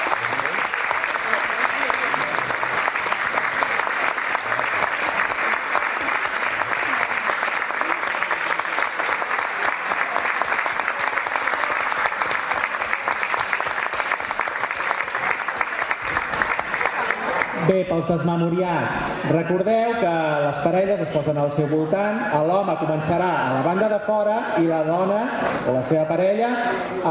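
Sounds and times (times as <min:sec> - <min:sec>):
applause from a large audience: 0:00.0 - 0:17.7
speech: 0:18.0 - 0:27.0.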